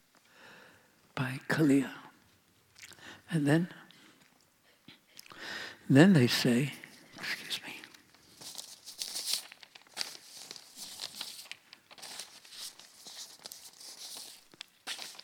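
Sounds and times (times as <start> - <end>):
speech: 1.2 - 2.0, 3.3 - 3.8, 5.9 - 6.8
book pages being turned: 7.9 - 15.2.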